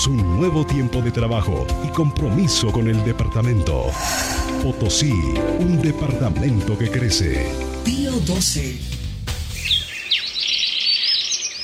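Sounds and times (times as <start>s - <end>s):
speech: 0.0s - 9.0s
swallow chirping with rapid high twittering calls: 9.5s - 11.6s.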